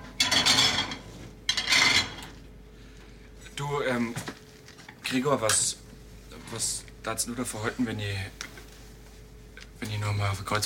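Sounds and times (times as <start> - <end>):
plates rattling and scraping: 0.0 - 2.4
speech: 3.6 - 4.4, 5.1 - 5.8, 6.5 - 8.4, 9.8 - 10.6.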